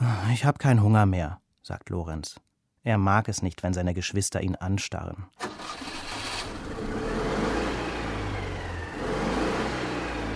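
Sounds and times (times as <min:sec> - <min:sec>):
speech: 0:00.3 - 0:05.9
car engine revving and accelerating as car drives off: 0:05.8 - 0:10.3.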